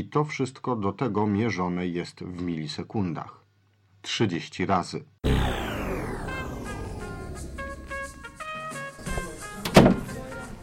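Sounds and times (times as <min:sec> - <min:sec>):
speech: 0:00.0 - 0:03.4, 0:04.0 - 0:05.6
low rumbling wash of noise: 0:05.2 - 0:08.6
door pulled shut with a solid thud: 0:09.0 - 0:10.2.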